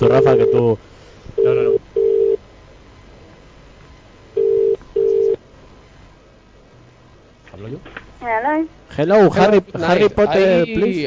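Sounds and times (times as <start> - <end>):
speech: 0.0 - 1.8, 8.4 - 11.0
telephone line ringing tone beeps: 1.4 - 2.4, 4.4 - 5.4.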